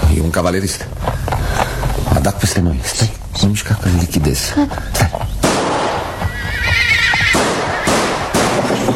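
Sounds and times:
speech: 0.2 - 1.7, 2.3 - 5.3
gunshot cracks: 5.5 - 6.0, 7.3 - 8.7
cavalryman's horse whinnying: 5.9 - 8.3.

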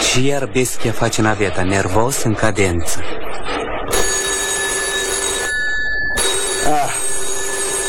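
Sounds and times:
speech: 0.1 - 3.4
telephone ringing: 3.9 - 7.8.

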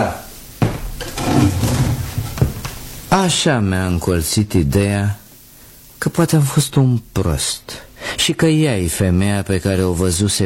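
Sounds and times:
wooden desk drawer sliding and knocking: 0.6 - 2.8
speech: 3.1 - 5.2, 6.0 - 10.4.

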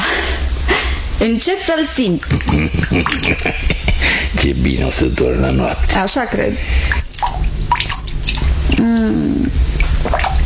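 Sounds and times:
low steady noise: 0.0 - 10.4
speech: 1.2 - 7.0, 8.8 - 10.3
faucet dripping: 2.0 - 3.5, 6.8 - 10.4
laughter: 2.3 - 4.3.

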